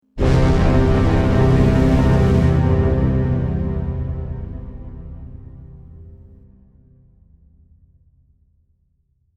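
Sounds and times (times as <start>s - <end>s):
orchestral strings overture in C: 0.2s - 6.4s.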